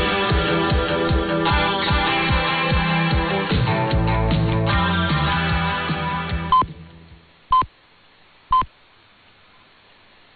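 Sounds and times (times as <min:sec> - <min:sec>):
broadcast music: 0:00.0 - 0:06.9
radio time signal pips: 0:07.5 - 0:07.7, 0:08.5 - 0:08.7.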